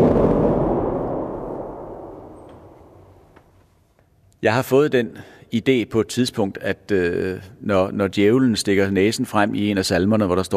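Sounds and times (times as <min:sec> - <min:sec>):
organ thunder pedal imitating loud overhead thunder: 0:00.0 - 0:03.4
speech: 0:04.4 - 0:10.5.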